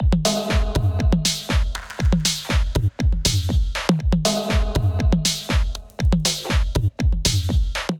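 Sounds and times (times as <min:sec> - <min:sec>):
dub drum kit: 0:00.0 - 0:07.9.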